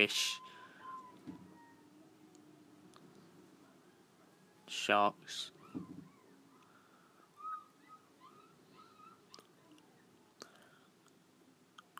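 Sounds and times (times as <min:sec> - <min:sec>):
speech: 0:00.0 - 0:00.4, 0:04.7 - 0:06.0
seagulls calling faintly at the seaside: 0:00.0 - 0:02.2, 0:04.4 - 0:10.2.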